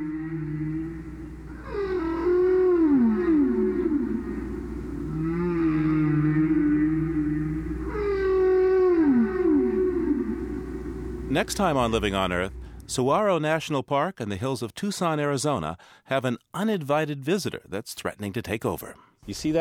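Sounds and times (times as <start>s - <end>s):
whale song: 0.0s - 13.0s
low rumble of ocean background: 4.2s - 13.0s
speech: 11.4s - 19.5s.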